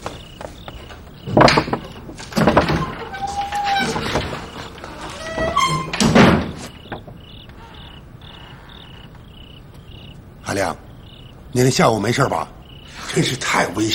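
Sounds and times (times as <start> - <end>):
handling noises: 0.0 - 10.4
heavy wooden thunks of a door being opened: 0.9 - 7.4
speech: 10.6 - 10.8, 11.6 - 13.9.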